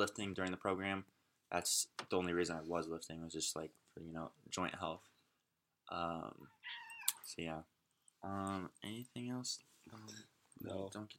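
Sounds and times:
speech: 0:00.0 - 0:05.1, 0:05.9 - 0:11.1
cat meowing: 0:06.5 - 0:07.3.

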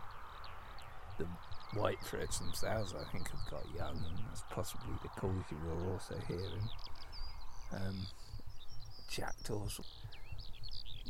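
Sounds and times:
Eurasian skylark warbling song: 0:00.0 - 0:11.0
speech: 0:01.2 - 0:07.0, 0:07.7 - 0:08.4, 0:09.1 - 0:10.2.

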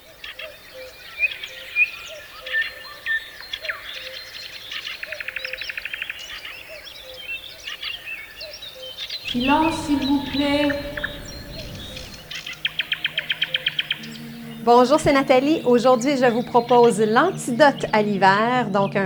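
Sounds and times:
birds chirping and singing in an outdoor chorus: 0:09.3 - 0:19.0
speech: 0:09.4 - 0:10.9, 0:14.6 - 0:19.0.

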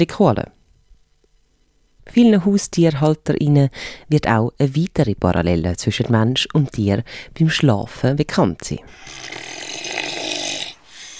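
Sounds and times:
speech: 0:00.0 - 0:00.6, 0:02.1 - 0:09.5
small pet animal snoring: 0:08.9 - 0:11.1.

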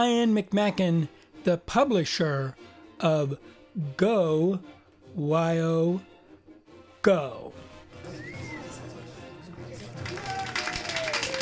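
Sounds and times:
speech: 0:00.0 - 0:06.1, 0:07.0 - 0:08.3
crowd applauding: 0:08.1 - 0:11.3.

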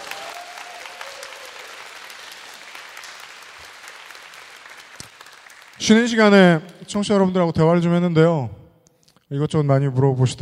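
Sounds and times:
sustained applause from an audience: 0:00.0 - 0:06.5
speech: 0:05.8 - 0:08.6, 0:09.3 - 0:10.4.

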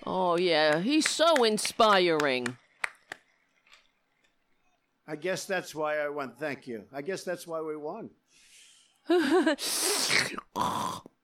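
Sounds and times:
speech: 0:00.1 - 0:02.6, 0:05.1 - 0:08.2, 0:09.1 - 0:11.1
heavy breathing: 0:08.3 - 0:10.1.

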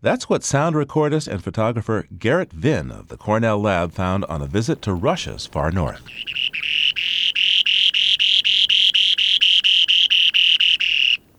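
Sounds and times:
speech: 0:00.0 - 0:06.7
Spoon-billed Sandpiper song on breeding grounds in far northeast Russia: 0:02.3 - 0:11.3.

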